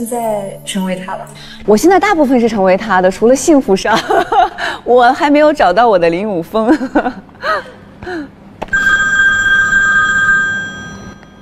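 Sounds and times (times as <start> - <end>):
speech: 0.0 - 8.3
telephone ringing with bright electronic tone: 8.7 - 11.4.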